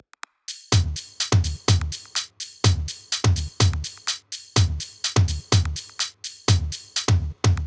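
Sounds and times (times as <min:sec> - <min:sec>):
bass house EDM drum kit top loop: 0:00.5 - 0:07.6.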